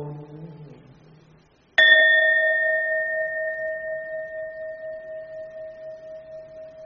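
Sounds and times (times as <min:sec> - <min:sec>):
Buddhist temple bell struck and ringing: 0:01.8 - 0:06.8.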